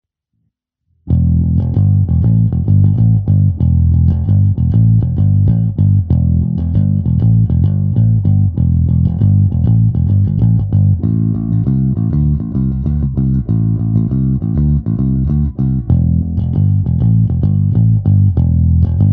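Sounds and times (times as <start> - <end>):
Greco TB-750 Thunderbird bass through both pickups with Overloud TH3 amp simulation: 1.1 - 19.1.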